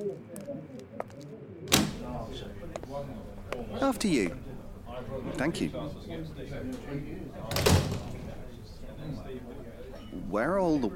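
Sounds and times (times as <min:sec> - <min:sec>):
door latch clicks of a workman's club door: 0:01.7 - 0:02.2, 0:07.5 - 0:08.4
low indistinct murmur: 0:01.7 - 0:10.9
speech: 0:02.9 - 0:04.4, 0:05.1 - 0:08.4, 0:09.0 - 0:10.9.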